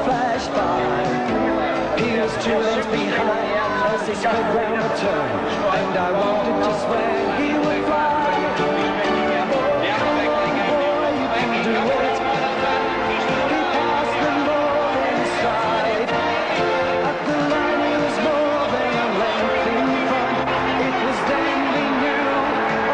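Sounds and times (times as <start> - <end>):
large crowd cheering in celebration: 0.0 - 22.9
speech: 0.4 - 1.4, 2.0 - 8.6
people shouting in a crowd: 8.4 - 22.9.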